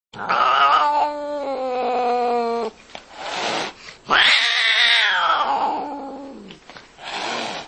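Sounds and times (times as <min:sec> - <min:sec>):
angry cat: 0:00.2 - 0:02.7, 0:04.1 - 0:06.5.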